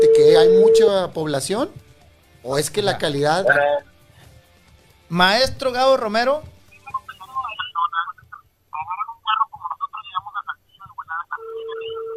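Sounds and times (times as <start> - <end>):
steady telephone ringing tone: 0.0 - 0.9, 3.4 - 3.8, 11.2 - 12.1
speech: 0.4 - 1.8, 2.4 - 3.9, 5.1 - 6.5
garbled distorted voices crackling over a telephone line with interference: 3.4 - 3.8, 6.7 - 12.1.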